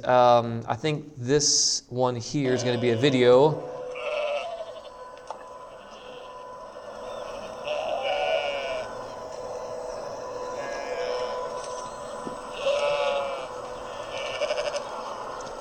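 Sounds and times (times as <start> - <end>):
speech: 0.0 - 3.8
outdoor hum: 0.0 - 15.5
lambs bleating: 2.4 - 6.4, 7.0 - 15.5.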